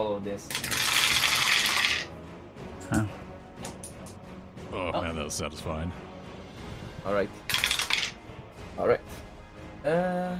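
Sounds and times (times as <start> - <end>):
speech: 0.0 - 0.9, 2.9 - 3.1, 5.2 - 6.2, 7.0 - 7.5, 8.8 - 9.2, 9.8 - 10.3
dice tumbling and rattling together: 0.5 - 2.1, 7.5 - 8.2.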